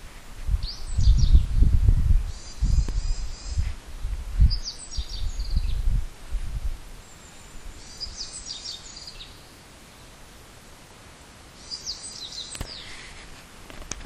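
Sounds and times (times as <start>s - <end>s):
small birds chirping around a house in spring: 0.5s - 3.8s, 4.4s - 6.0s, 7.0s - 10.4s, 11.2s - 13.2s.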